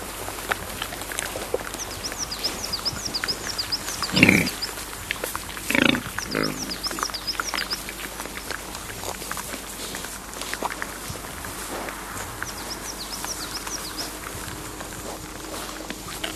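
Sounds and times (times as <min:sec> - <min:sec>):
small birds chirping: 0:00.0 - 0:16.3
wild boar grunting: 0:00.0 - 0:16.3.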